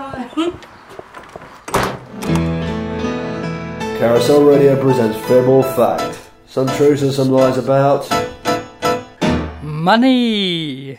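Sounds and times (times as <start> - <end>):
speech: 0.2 - 0.7, 4.0 - 8.3, 9.8 - 10.9
door swinging shut with a solid thunk: 1.7 - 2.6.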